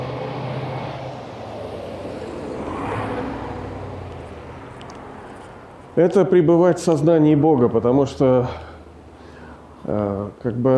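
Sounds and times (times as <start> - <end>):
car passing by outside with engine rumble and road noise: 0.0 - 5.9
speech: 6.0 - 8.7, 9.9 - 10.7.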